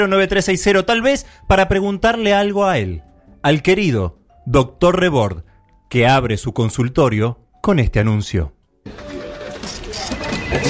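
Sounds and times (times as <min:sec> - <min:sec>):
speech: 0:00.0 - 0:09.0
printer printing pages: 0:08.9 - 0:10.6.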